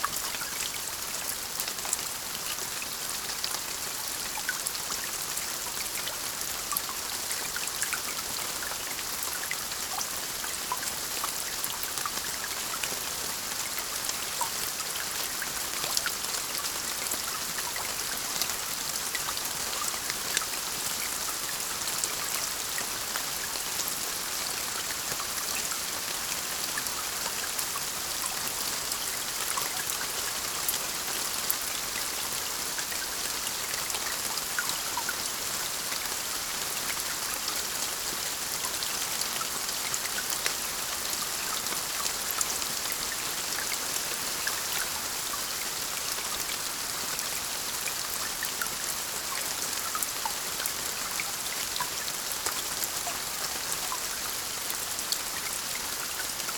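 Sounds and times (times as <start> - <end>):
consistent moderate rain into puddles: 0.0 - 56.5.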